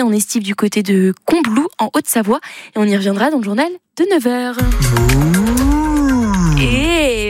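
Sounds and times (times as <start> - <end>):
speech: 0.0 - 5.8, 6.6 - 7.2
human voice imitating a cow mooing: 4.6 - 7.2.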